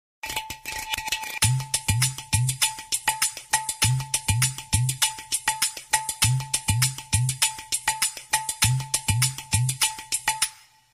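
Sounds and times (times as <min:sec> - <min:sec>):
tabla music: 0:00.2 - 0:10.9.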